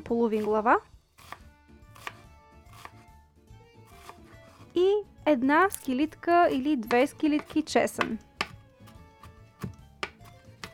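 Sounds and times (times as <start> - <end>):
knife finely chopping onion on a board: 0.0 - 3.2, 3.8 - 4.7, 6.6 - 10.7
speech: 0.1 - 0.9, 4.8 - 8.3.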